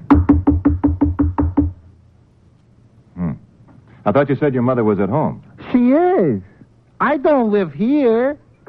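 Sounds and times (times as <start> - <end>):
quick loud knocking on a door: 0.0 - 1.8
speech: 4.0 - 8.4.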